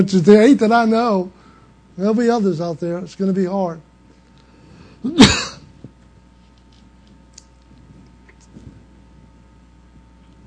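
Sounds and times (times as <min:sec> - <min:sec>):
speech: 0:00.0 - 0:01.4, 0:02.0 - 0:03.9, 0:05.0 - 0:05.5
harsh cough or throat-clearing: 0:05.0 - 0:05.7.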